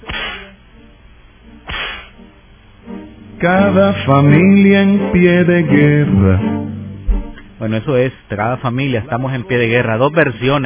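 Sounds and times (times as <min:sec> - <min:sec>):
whip cracks: 0:00.0 - 0:00.6, 0:01.7 - 0:02.2
speech: 0:03.4 - 0:06.6, 0:07.6 - 0:10.6.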